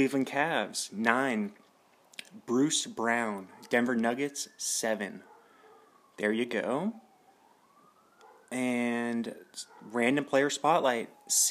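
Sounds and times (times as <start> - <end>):
speech: 0.0 - 1.6, 2.2 - 5.3, 6.2 - 7.0, 8.5 - 11.4
emergency vehicle siren wailing outside: 0.0 - 11.4.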